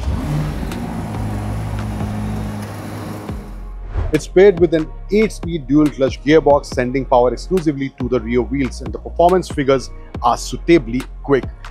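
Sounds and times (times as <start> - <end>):
twin-turbo V8 car engine revving: 0.0 - 3.7
speech: 4.1 - 11.6.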